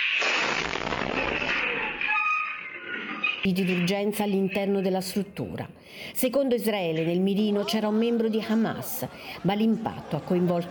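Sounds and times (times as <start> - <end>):
loud drone strike explosion in front of a hospital: 0.0 - 2.1
speech: 3.4 - 10.6
laughter: 7.1 - 10.6.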